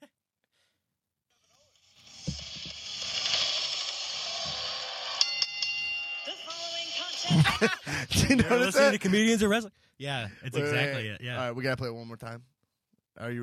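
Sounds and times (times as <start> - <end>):
bell strike: 5.2 - 6.8
laughter: 7.2 - 9.5
speech: 7.4 - 12.5, 13.2 - 13.4.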